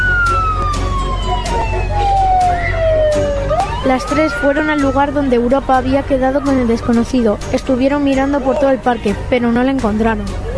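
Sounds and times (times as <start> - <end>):
police car siren wailing in a downward sweep: 0.0 - 6.8
low rumble of engine and road noise: 0.0 - 10.5
speech: 3.9 - 10.5.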